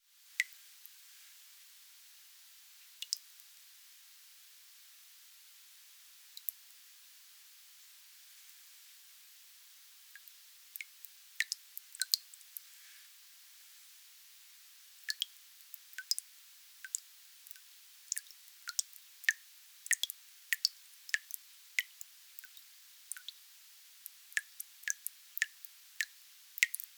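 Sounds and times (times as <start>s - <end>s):
water dripping in a kitchen sink: 0.3s - 1.0s, 2.8s - 3.5s, 6.3s - 6.8s, 10.1s - 12.7s, 14.6s - 26.9s.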